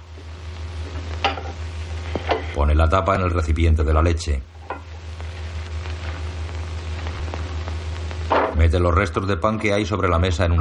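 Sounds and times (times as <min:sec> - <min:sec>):
steady low hum: 0:00.0 - 0:10.5
cups being stacked and set down on a cluttered table: 0:01.2 - 0:02.4
speech: 0:02.6 - 0:04.5, 0:08.7 - 0:10.5.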